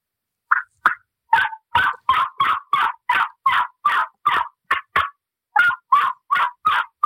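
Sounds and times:
loud turkey yelps on a modified cutter mouth call imitating a hen turkey: 0.5 - 7.0.

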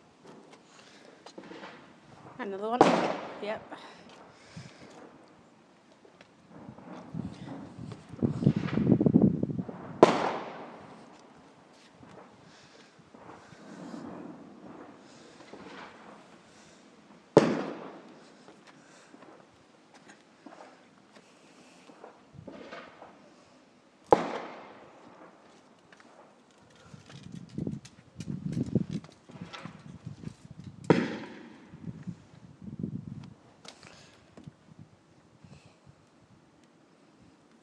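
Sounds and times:
fireworks exploding outdoors: 0.2 - 5.4, 6.0 - 26.4, 30.8 - 32.2
faint crackles of fireworks: 0.2 - 9.0, 9.6 - 32.5
speech: 2.4 - 3.9.

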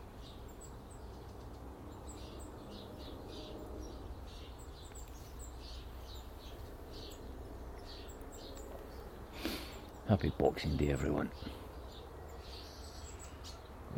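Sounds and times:
several birds chirping on a Boxing Day morning: 0.0 - 13.9
steady low outdoor rumble and hiss: 0.0 - 13.9
speech: 10.1 - 11.6.

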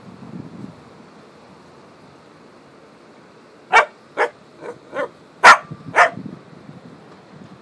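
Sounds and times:
soft wind-like rumble: 0.0 - 7.6
dog barking: 3.7 - 6.2.

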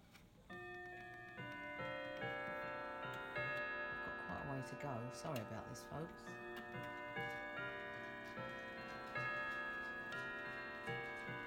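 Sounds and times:
clock ticking: 0.5 - 11.4
speech: 4.6 - 7.4.

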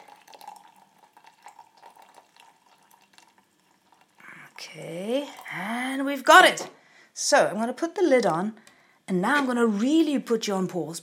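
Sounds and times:
water pouring over dried cherries for tea: 0.0 - 5.7
speech: 4.6 - 11.0.

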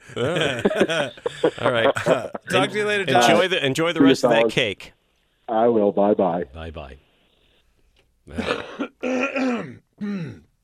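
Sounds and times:
laughter: 0.0 - 3.3
speech: 0.1 - 7.0, 8.3 - 10.4
phlegmy throat clearing: 8.3 - 10.5.

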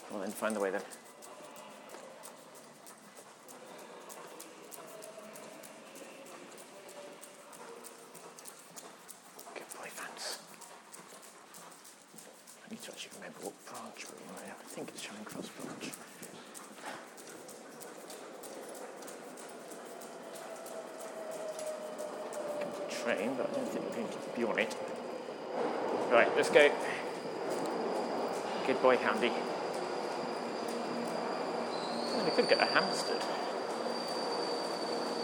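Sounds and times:
footsteps: 0.0 - 35.2
speech: 0.1 - 1.1
northbound train at station platform with electric whine and low rumble: 16.2 - 35.2.

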